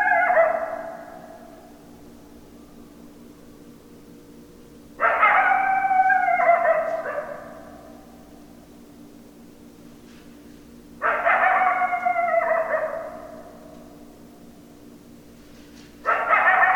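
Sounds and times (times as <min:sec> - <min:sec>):
several coyotes howling: 0:00.0 - 0:01.8, 0:05.0 - 0:08.3, 0:11.0 - 0:14.0, 0:16.0 - 0:16.7
steady low hum: 0:00.0 - 0:16.7.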